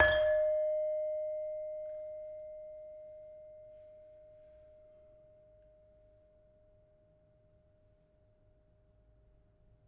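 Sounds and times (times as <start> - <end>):
saron metallophone in a gamelan: 0.0 - 4.2.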